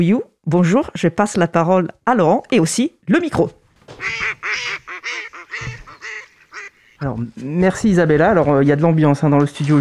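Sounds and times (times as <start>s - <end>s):
speech: 0.0s - 5.8s, 7.0s - 9.7s
ducks quacking: 3.8s - 7.2s.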